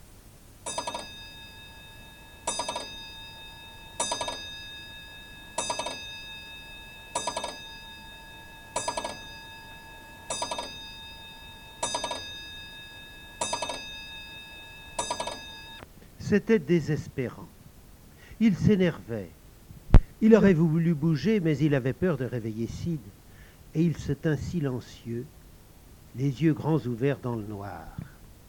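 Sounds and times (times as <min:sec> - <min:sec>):
pendulum clock striking: 0:00.6 - 0:15.8
speech: 0:16.3 - 0:17.6, 0:18.4 - 0:19.4, 0:20.2 - 0:25.4, 0:26.1 - 0:28.1.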